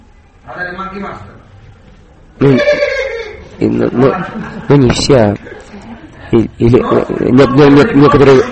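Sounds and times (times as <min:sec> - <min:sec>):
speech: 0:00.5 - 0:01.4, 0:02.4 - 0:05.7, 0:06.3 - 0:08.5
person imitating a donkey bray: 0:02.4 - 0:03.5
laughter: 0:02.6 - 0:08.5.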